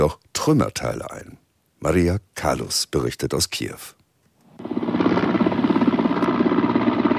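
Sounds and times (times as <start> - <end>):
speech: 0.0 - 4.0
helicopter engine roar: 4.6 - 7.1
helicopter rotor thumping: 4.6 - 7.1.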